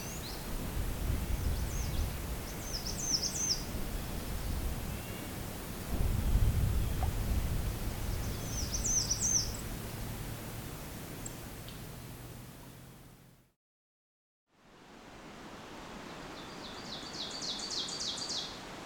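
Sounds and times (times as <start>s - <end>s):
American Redstart song: 0.0s - 13.0s, 16.1s - 18.8s
steady low rumbling background noise: 0.0s - 13.5s.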